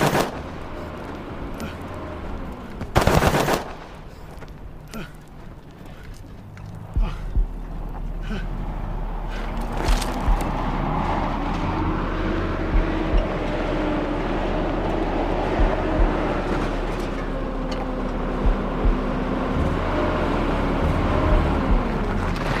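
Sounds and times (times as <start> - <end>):
rapid burst of gunfire and scattered shots fired at a car: 0.0 - 0.5, 2.9 - 4.0
steady vehicle engine rumble: 0.0 - 22.5.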